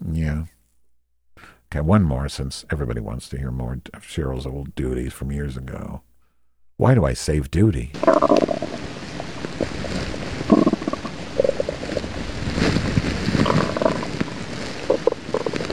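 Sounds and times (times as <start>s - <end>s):
speech: 0.2s - 0.6s, 1.7s - 6.1s, 6.8s - 8.6s
stomach rumbling: 8.0s - 15.7s.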